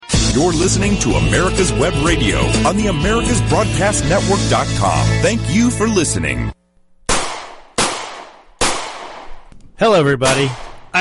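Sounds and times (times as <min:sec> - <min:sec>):
speech: 0:00.4 - 0:06.6, 0:09.8 - 0:10.9
gunshots: 0:07.1 - 0:09.5, 0:10.2 - 0:10.9.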